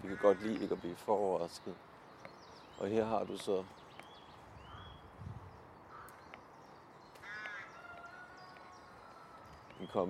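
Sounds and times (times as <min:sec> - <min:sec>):
rook colony calling: 0:00.0 - 0:00.9, 0:04.6 - 0:05.1, 0:05.8 - 0:06.5, 0:07.1 - 0:09.7
speech: 0:00.0 - 0:01.9, 0:02.8 - 0:03.8, 0:09.9 - 0:10.0.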